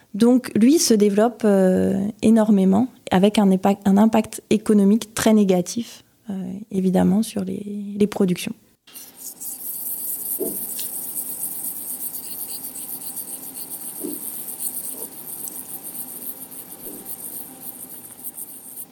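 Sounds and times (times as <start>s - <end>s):
speech: 0.1s - 8.6s
cicada-like insects buzzing drone: 8.9s - 18.9s.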